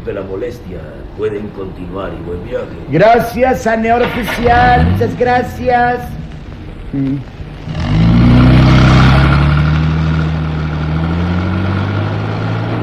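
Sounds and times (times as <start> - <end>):
speech: 0.0 - 6.2, 6.9 - 7.8
car accelerating onto an asphalt road: 3.7 - 12.8.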